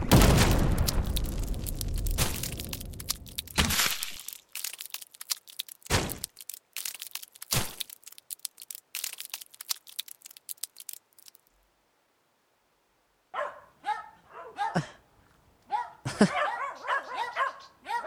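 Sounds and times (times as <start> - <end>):
sharp clicking sounds: 0.0 - 11.5
several dogs barking excitedly: 13.3 - 15.0, 15.7 - 18.0.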